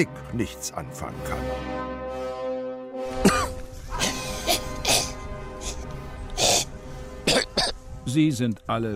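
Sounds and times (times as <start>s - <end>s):
speech: 0.0s - 2.3s, 8.1s - 8.9s
sustained musical tone: 0.0s - 8.9s
audience coughing and clearing throats: 3.2s - 5.2s, 7.2s - 7.8s.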